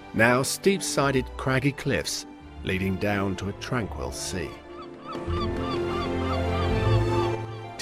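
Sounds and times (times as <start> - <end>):
speech: 0.2 - 4.6
seagull calling as it takes flight above rugged sea cliffs: 4.7 - 7.7.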